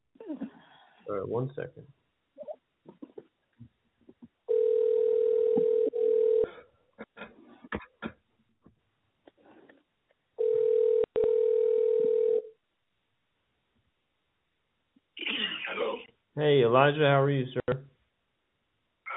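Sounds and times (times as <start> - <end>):
speech: 1.1 - 2.0, 16.7 - 17.8
buzzy telephone ringback tone while placing a call: 4.5 - 6.5, 10.4 - 12.5.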